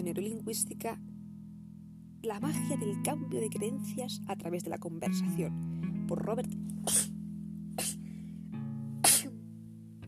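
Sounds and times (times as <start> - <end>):
speech: 0.1 - 1.1, 2.2 - 7.2
sharp sneezes: 6.9 - 7.1, 7.8 - 8.0, 9.0 - 9.3.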